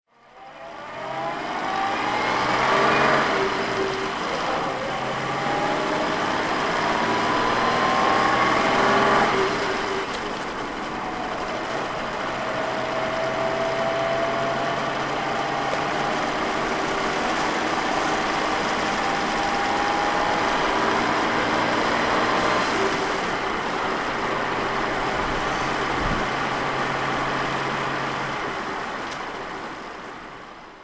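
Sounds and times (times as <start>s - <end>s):
Jaguar Mk4 DHC car engine driving: 0.2s - 30.6s.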